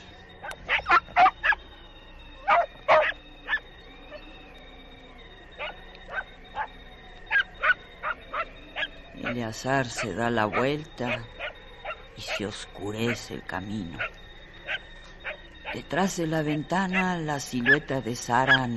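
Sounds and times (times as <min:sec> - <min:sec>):
dog barking anxiously at a house: 0:00.4 - 0:01.6, 0:02.4 - 0:03.6, 0:05.6 - 0:06.7, 0:07.3 - 0:08.9, 0:10.0 - 0:12.0, 0:14.0 - 0:15.8
speech: 0:09.4 - 0:11.4, 0:12.2 - 0:14.1, 0:15.8 - 0:18.7.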